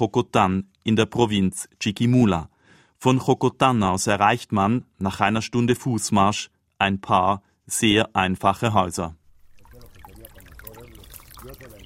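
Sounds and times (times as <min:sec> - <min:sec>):
speech: 0:00.0 - 0:09.2
small trickle of irrigation water led onto dry fields: 0:09.2 - 0:11.8.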